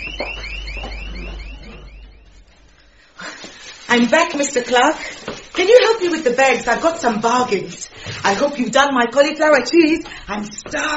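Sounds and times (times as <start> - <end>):
panic alarm with rapid repeating electronic chirps: 0.0 - 3.1
steady low hum: 0.0 - 3.2
speech: 3.9 - 10.9.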